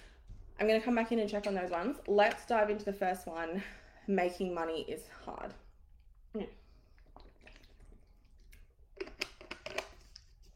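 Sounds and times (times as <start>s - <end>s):
speech: 0.6s - 5.6s, 6.3s - 6.6s
person gulping and swallowing water: 6.4s - 10.3s.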